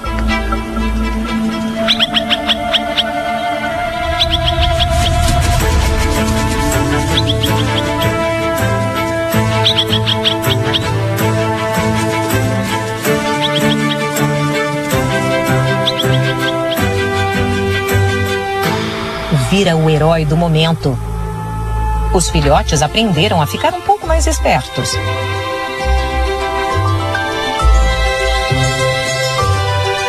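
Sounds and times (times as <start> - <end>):
parent bird giving alarm calls: 0.0 - 5.2, 6.7 - 25.2
steady sustained tones: 0.0 - 30.0
speech: 19.6 - 21.1, 22.1 - 25.4.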